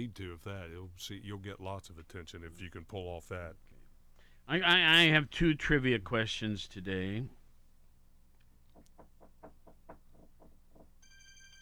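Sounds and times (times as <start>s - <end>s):
speech: 0.0s - 3.7s, 4.5s - 7.4s
steady electronic phone ringtone: 11.0s - 11.5s
vibrating handset rattling on a surface: 11.0s - 11.5s.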